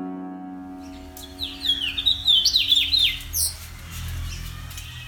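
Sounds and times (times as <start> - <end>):
house finch warbling song: 0.8 - 5.0
sustained humming musical tone: 0.8 - 5.0.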